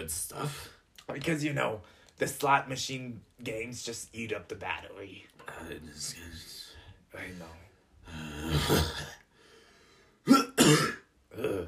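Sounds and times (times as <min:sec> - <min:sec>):
speech: 0:00.0 - 0:09.2, 0:10.3 - 0:11.6
person coughing up phlegm: 0:08.4 - 0:09.2, 0:10.2 - 0:11.6.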